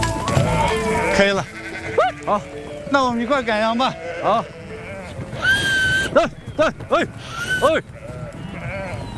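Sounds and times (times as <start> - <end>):
sheep bleating while being unloaded from a vehicle: 0.2 - 9.1
speech: 1.2 - 1.6, 2.3 - 4.6, 6.2 - 7.9.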